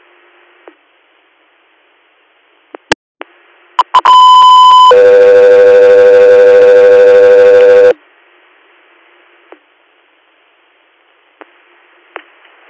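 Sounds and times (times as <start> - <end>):
dispatch radio paging alert tones: 3.8 - 8.0.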